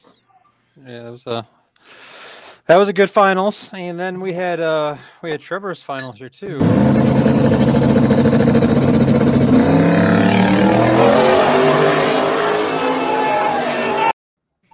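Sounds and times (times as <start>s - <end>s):
speech: 0.8s - 2.0s, 2.7s - 8.8s
race car engine revving hard: 6.6s - 14.1s.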